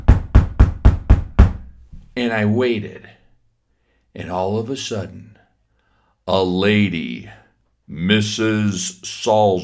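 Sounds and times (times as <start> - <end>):
boy knocking on the solid wooden front door of a house: 0.0 - 2.1
speech: 2.2 - 3.2, 4.2 - 5.4, 6.3 - 9.6.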